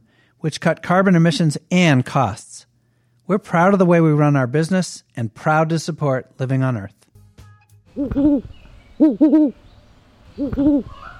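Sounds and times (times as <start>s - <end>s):
speech: 0.4s - 2.7s, 3.3s - 7.0s, 8.0s - 9.6s, 10.4s - 11.1s
great horned owls hooting: 7.9s - 9.7s, 10.3s - 11.1s.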